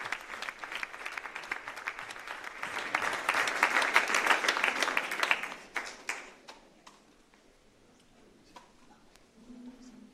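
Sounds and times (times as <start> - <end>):
audience applauding after papal blessing: 0.0 - 6.4.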